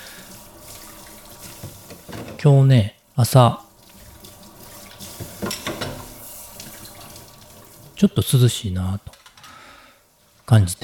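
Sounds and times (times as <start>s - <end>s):
running tap water pouring into a sink: 0.0s - 2.8s, 3.6s - 8.5s
dishes clinking while rinsed: 1.6s - 2.4s, 5.0s - 6.3s
speech: 2.4s - 3.6s, 8.0s - 9.2s, 10.5s - 10.8s.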